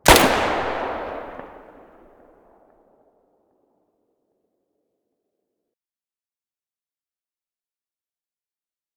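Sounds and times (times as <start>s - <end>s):
distant weapon muzzle blast: 0.0s - 2.2s.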